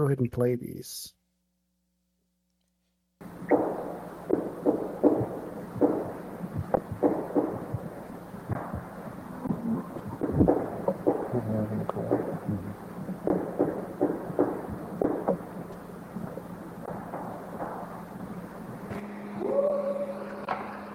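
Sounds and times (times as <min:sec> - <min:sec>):
speech: 0:00.0 - 0:01.2
purported Bigfoot whooping and chattering calls on an old field recording: 0:03.2 - 0:20.9
steady low hum: 0:03.2 - 0:20.9.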